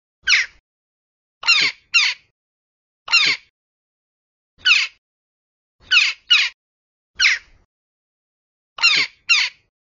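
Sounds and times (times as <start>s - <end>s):
jackdaw calling: 1.4s - 2.3s, 3.1s - 3.5s, 5.8s - 6.6s, 7.2s - 7.5s, 8.8s - 9.7s.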